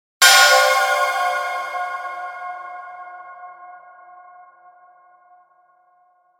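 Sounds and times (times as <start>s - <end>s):
chime impact with long reverb: 0.2s - 4.8s.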